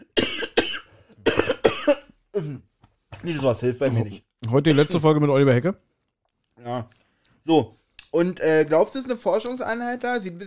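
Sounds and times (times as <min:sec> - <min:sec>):
person coughing: 0:00.0 - 0:02.6, 0:04.7 - 0:05.0
speech: 0:02.4 - 0:05.9, 0:06.6 - 0:10.4.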